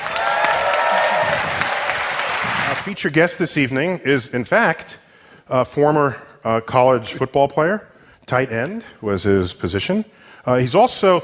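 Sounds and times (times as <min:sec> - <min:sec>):
audience applause welcoming a guest at a live science-themed show: 0:00.0 - 0:03.0
speech: 0:02.8 - 0:11.2.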